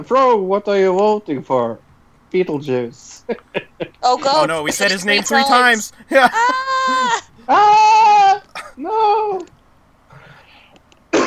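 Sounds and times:
speech: 0.0s - 9.6s
laughter: 3.3s - 8.8s
sharp loud cough: 6.0s - 7.2s, 8.5s - 8.8s
faint breathy rustling: 10.1s - 10.8s.

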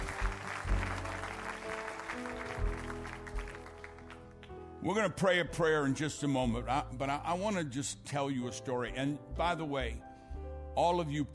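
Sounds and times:
audience clapping: 0.0s - 4.6s
speech: 4.8s - 10.1s, 10.8s - 11.3s.

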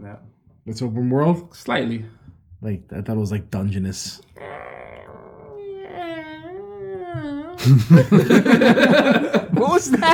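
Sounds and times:
speech: 0.1s - 4.5s, 7.1s - 10.1s
person imitating a cat meow: 4.4s - 7.8s
laughter: 7.1s - 10.1s.

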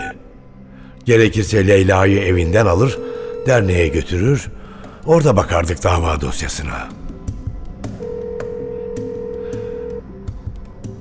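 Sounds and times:
speech: 1.1s - 7.0s
telephone ringing with steady electronic tone: 1.7s - 4.6s, 8.0s - 10.0s.

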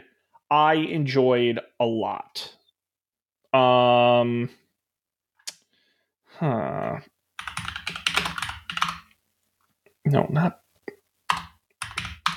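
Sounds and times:
speech: 0.5s - 2.6s, 3.5s - 4.6s, 6.4s - 7.1s, 10.1s - 10.6s
typing on a computer keyboard: 7.4s - 9.1s, 11.3s - 12.3s.

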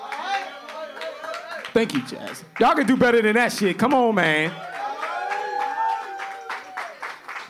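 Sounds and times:
sustained whooping cheer: 0.0s - 1.7s, 4.5s - 7.2s
audience clapping for performing artists: 0.0s - 7.4s
speech: 1.8s - 4.7s.

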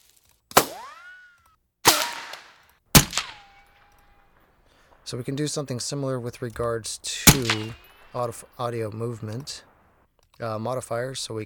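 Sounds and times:
unprocessed bullet ricochets from a sound-effects library: 0.5s - 5.1s, 7.2s - 8.2s
speech: 5.1s - 9.7s, 10.4s - 11.4s.

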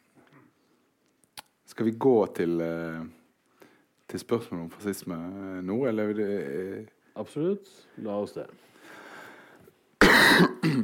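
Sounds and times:
speech: 1.8s - 3.2s, 4.1s - 8.7s
person coughing: 10.0s - 10.8s.

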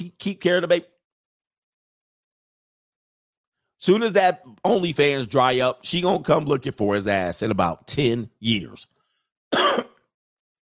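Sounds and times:
speech: 0.1s - 0.9s, 3.8s - 8.9s, 9.5s - 9.8s
short harsh cough into the microphone: 9.5s - 10.1s.

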